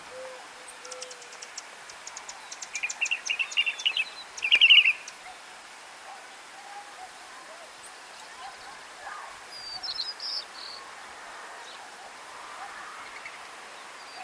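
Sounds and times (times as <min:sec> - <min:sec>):
Northern Mockingbird Mimus polyglottos singing: 0:02.2 - 0:05.1.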